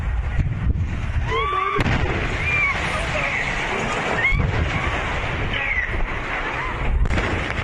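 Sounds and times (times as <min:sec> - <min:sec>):
gas explosion and fire roaring: 0:00.0 - 0:07.6
raised voices and shouts: 0:01.2 - 0:07.0.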